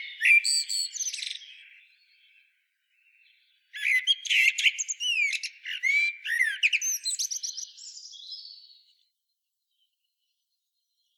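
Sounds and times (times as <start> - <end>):
common blackbird Turdus merula singing: 0.0 - 8.9.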